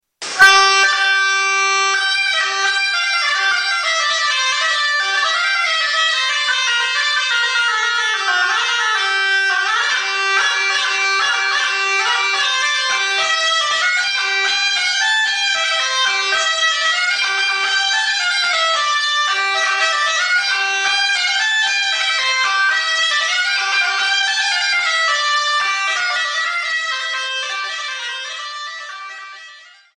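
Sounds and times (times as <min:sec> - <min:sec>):
cabrette bagpipe playing: 0:00.2 - 0:29.9.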